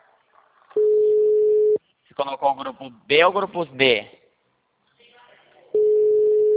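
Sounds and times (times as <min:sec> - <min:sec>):
telephone busy signal: 0:00.8 - 0:01.8, 0:05.8 - 0:06.5
speech: 0:02.2 - 0:04.2.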